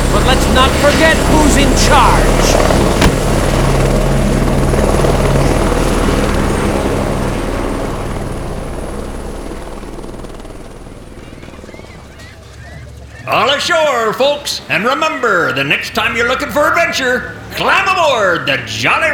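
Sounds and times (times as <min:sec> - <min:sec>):
helicopter engine roaring while taking off: 0:00.0 - 0:18.2
speech: 0:00.3 - 0:03.0, 0:13.6 - 0:19.1
steady low helicopter rotor thump: 0:02.8 - 0:03.6.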